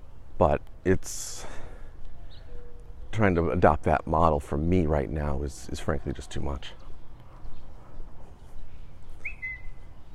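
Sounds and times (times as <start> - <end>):
speech: 0.4 - 1.6, 3.2 - 6.8
bird whistling call possibly a cuckoo: 9.1 - 10.0.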